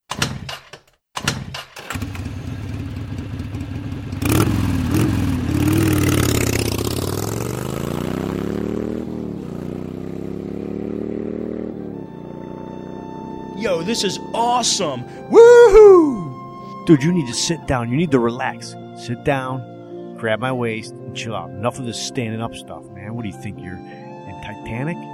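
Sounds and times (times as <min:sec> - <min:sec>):
motorcycle engine starting and revving as it pulls away: 0:01.2 - 0:14.9
speech: 0:13.6 - 0:16.2, 0:16.8 - 0:24.0, 0:24.6 - 0:25.1.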